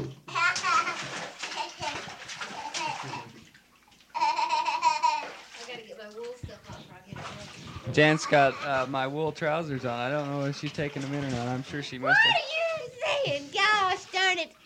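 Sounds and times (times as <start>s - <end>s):
young children splashing in bathwater: 0.0s - 14.6s
young children chattering: 8.0s - 9.0s
speech: 8.0s - 12.5s.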